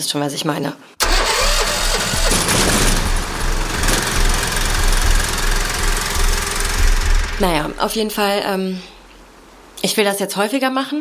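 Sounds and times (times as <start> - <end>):
speech: 0.0 - 1.0, 7.4 - 8.9, 9.8 - 11.0
brand-new petrol generator running: 1.0 - 8.4.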